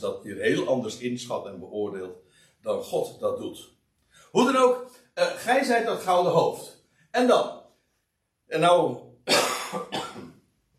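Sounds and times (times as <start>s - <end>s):
speech: 0.0s - 7.6s, 8.5s - 10.0s
rough throat clearing with a tickly cough: 9.3s - 10.4s.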